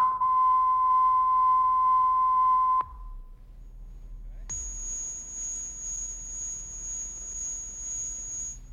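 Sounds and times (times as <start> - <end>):
faint analog tape hiss: 0.0 - 8.7
steady 1 kHz test tone: 4.5 - 8.7.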